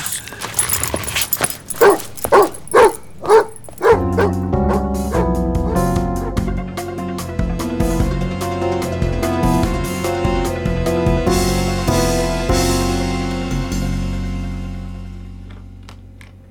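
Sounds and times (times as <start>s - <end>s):
dog barking and whimpering: 0.6s - 6.4s
steady music: 1.8s - 16.4s.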